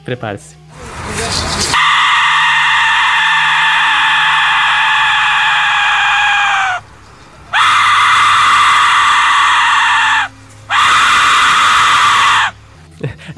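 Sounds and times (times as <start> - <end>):
speech: 0.1 - 1.8
Aztec death whistle shrieking: 1.7 - 6.9, 7.5 - 12.6.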